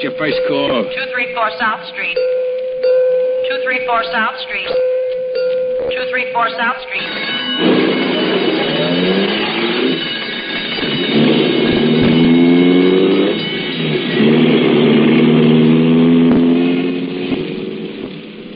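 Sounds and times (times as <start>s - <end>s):
speech: 0.0s - 2.4s, 3.5s - 5.0s, 5.8s - 7.8s
alarm bell ringing: 0.0s - 18.0s
ambulance engine accelerating hard through gear changes: 7.0s - 18.5s.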